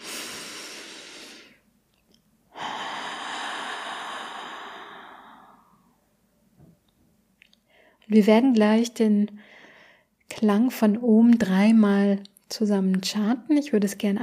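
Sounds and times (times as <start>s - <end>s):
deep breath in through the nose and out through the mouth in a guided meditation: 0.0s - 1.7s, 2.5s - 6.0s, 9.4s - 10.2s
speech: 8.1s - 9.6s, 10.3s - 14.2s.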